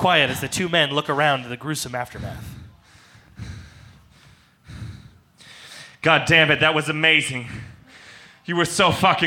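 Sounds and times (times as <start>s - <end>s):
speech: 0.0s - 2.6s, 6.0s - 7.7s, 8.5s - 9.2s
two men breathing heavily: 2.0s - 6.0s, 7.4s - 8.5s.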